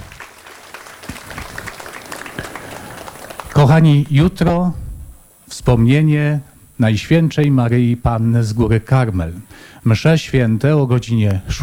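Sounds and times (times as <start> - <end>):
audience applauding in a reverberant church: 0.0 - 4.6
speech: 3.6 - 4.8, 5.6 - 11.6.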